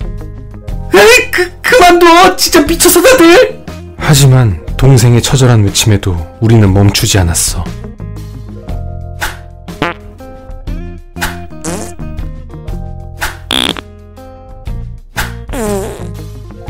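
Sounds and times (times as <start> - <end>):
speech: 1.2 - 7.8
rapid string of sputtering buzzy farts: 9.8 - 10.0, 11.6 - 12.0, 13.5 - 13.9, 15.5 - 16.3.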